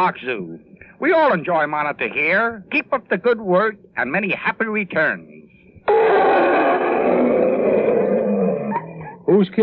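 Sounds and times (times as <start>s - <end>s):
speech: 0.0s - 6.5s, 9.3s - 9.6s
old zoo elephant trumpeting in Kansas City: 5.9s - 9.2s.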